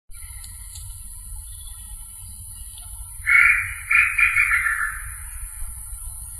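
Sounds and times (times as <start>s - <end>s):
Crypturellus tataupa calling: 1.4s - 5.6s.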